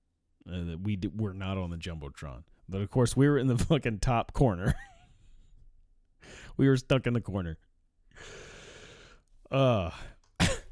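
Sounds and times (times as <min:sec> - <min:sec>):
speech: 0:00.5 - 0:04.9, 0:06.6 - 0:07.6, 0:09.5 - 0:10.1
long breathy wheeze: 0:08.1 - 0:10.2
strained voiced throat clearing: 0:10.2 - 0:10.7
sharp loud cough: 0:10.4 - 0:10.7.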